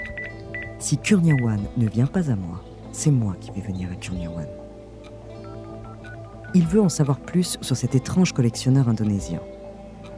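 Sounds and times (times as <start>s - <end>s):
landline telephone keypad tones: 0.0s - 1.5s, 5.4s - 6.7s
steady low tonal background: 0.0s - 10.1s
speech: 0.8s - 4.6s, 6.5s - 9.6s.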